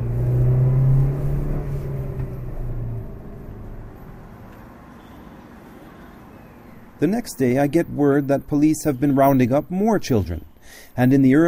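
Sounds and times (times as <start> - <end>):
car engine droning and accelerating while driving: 0.0 - 4.8
speech: 7.0 - 11.4.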